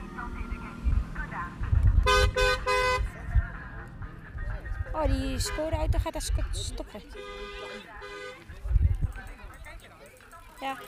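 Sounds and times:
voices chattering: 0.0s - 1.8s, 2.4s - 10.8s
low traffic rumble: 0.0s - 10.8s
Skoda car in a publicity caravan blaring its horn: 2.0s - 3.2s, 5.3s - 5.9s, 7.1s - 8.5s
speech: 5.0s - 8.2s, 10.6s - 10.8s.

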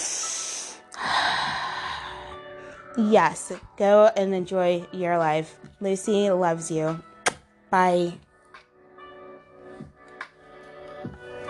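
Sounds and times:
person taking a deep breath: 0.0s - 3.0s
speech: 3.0s - 7.1s, 7.7s - 8.2s.

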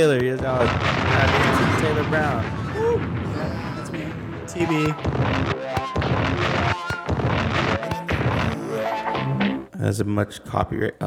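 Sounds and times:
speech: 0.0s - 3.7s, 4.5s - 6.7s, 9.8s - 11.0s
booming explosion sound effects: 0.4s - 9.5s
loud dense music: 0.6s - 8.8s.

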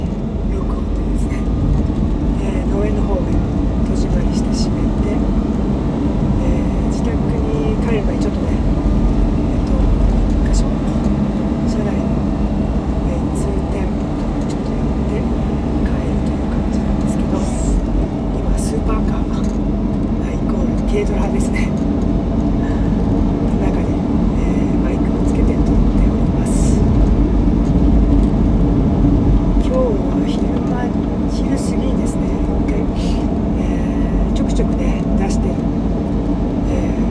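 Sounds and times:
person talking: 0.0s - 5.4s, 6.3s - 12.2s, 13.0s - 19.6s, 20.2s - 21.8s, 22.6s - 27.0s, 29.6s - 35.7s, 36.6s - 37.0s
car engine and tyres on the road heard from inside the cabin: 0.0s - 37.0s.

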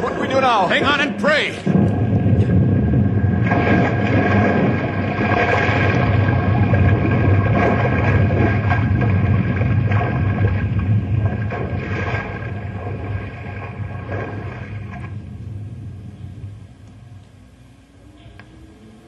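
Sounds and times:
speech: 0.4s - 1.9s
wind noise: 1.6s - 17.2s
massive iceberg cracking and splitting apart: 2.9s - 13.1s.

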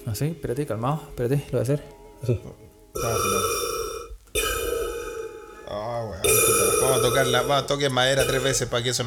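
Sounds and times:
speech: 0.0s - 3.6s, 5.7s - 9.0s
person imitating labored breathing of a coronavirus patient with an oxygen mask: 3.0s - 8.5s.

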